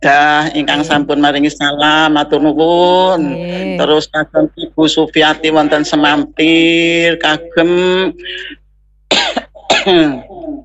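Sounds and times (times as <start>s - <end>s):
speech: 0.0s - 10.3s
person coughing: 8.4s - 10.6s.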